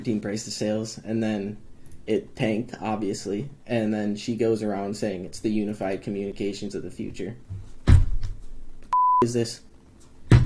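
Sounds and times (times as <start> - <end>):
speech: 0.0 - 7.6, 9.2 - 9.7
cell phone electronic beep: 8.9 - 9.2.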